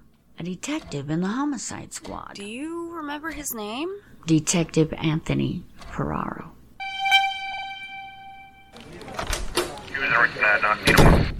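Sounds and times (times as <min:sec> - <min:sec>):
speech: 0:00.4 - 0:06.6, 0:10.2 - 0:11.3
steady tonal hum: 0:06.8 - 0:08.8
door flung open without a knock: 0:09.1 - 0:09.8.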